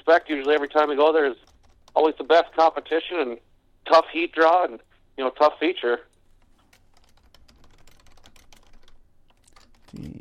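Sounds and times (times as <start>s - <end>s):
typing on a computer keyboard: 0.0s - 2.8s, 6.3s - 10.1s
speech: 0.1s - 6.1s.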